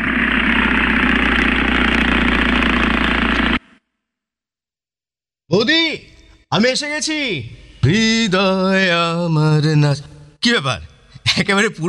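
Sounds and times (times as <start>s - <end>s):
motorbike engine running: 0.0s - 3.7s
speech: 5.5s - 11.8s.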